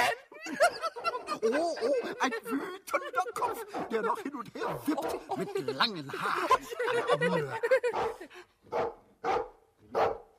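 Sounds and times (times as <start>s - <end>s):
laughter: 0.0s - 8.5s
speech: 1.4s - 9.0s
dog barking: 4.6s - 5.2s, 7.9s - 10.3s.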